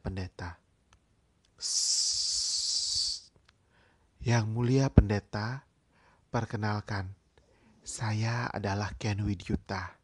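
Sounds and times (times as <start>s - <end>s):
speech: 0.1s - 0.6s, 1.6s - 2.0s, 4.2s - 5.7s, 6.3s - 7.2s, 7.9s - 10.0s
very large snake hissing: 1.6s - 3.3s.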